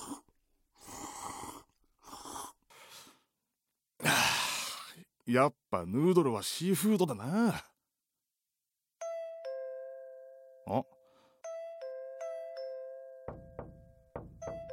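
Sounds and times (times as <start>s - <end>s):
speech: 5.3s - 7.7s, 10.7s - 11.0s
doorbell chime pressed by a woman: 9.0s - 10.7s, 11.4s - 14.7s
dull thumps: 13.3s - 14.7s.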